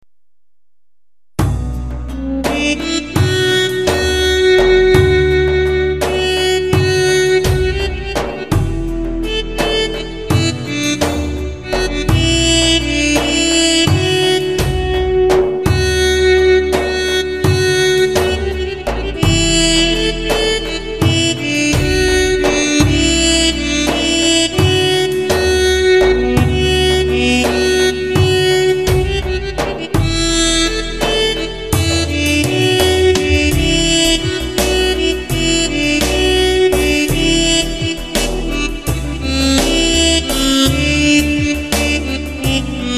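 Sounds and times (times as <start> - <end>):
Yemeni folk tune on Roland GW-8 synthesizer with mey sound: 1.4 - 42.9.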